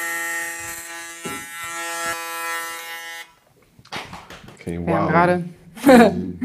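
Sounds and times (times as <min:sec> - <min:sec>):
electric hair clipper buzzing while shaving a 3 mm undercut at the sides: 0:00.0 - 0:03.4
speech: 0:04.7 - 0:06.4
laughter: 0:05.8 - 0:06.4.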